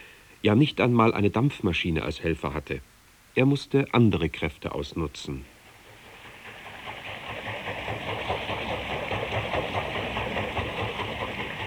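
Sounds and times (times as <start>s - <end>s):
speech: 0.4s - 5.5s
water mill with large wooden wheel turned by a briskly flowing stream: 5.5s - 11.6s.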